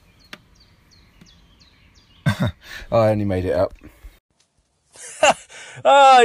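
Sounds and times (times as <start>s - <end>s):
faint bird repeating short descending chirps: 0.0s - 4.2s
speech: 2.4s - 4.0s, 5.8s - 6.2s.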